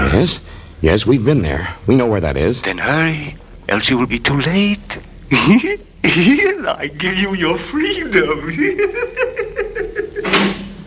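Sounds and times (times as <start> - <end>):
speech: 0.2 - 9.4
rhythmic creaking of a door opening in a radio drama: 2.0 - 10.8
laughter: 8.2 - 10.5
door opening: 10.2 - 10.8.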